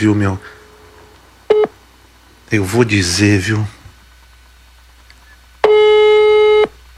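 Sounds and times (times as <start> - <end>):
speech: 0.0 - 0.6, 2.5 - 3.8
telephone tone during a call, electronic beep with harmonic buzz: 1.5 - 1.8, 5.6 - 6.7.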